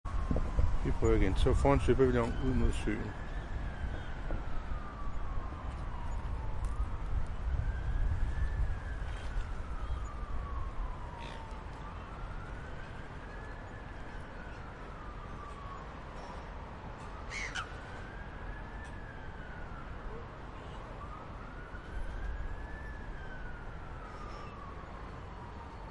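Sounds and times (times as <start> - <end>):
ambulance siren: 0.1 - 25.8
semi distant city traffic by a lake: 0.1 - 25.8
birds by a city lake: 11.1 - 11.6, 17.3 - 17.8.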